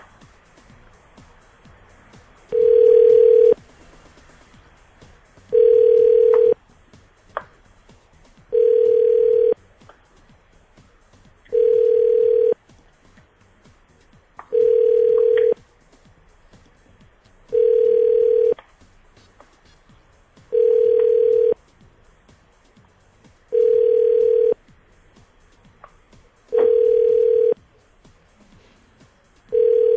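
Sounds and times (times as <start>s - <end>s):
telephone ringback tone during a call: 2.5s - 3.6s, 5.5s - 6.6s, 8.5s - 9.6s, 11.5s - 12.6s, 14.5s - 15.6s, 17.5s - 18.6s, 20.5s - 21.6s, 23.5s - 24.6s, 26.5s - 27.6s, 29.5s - 29.9s.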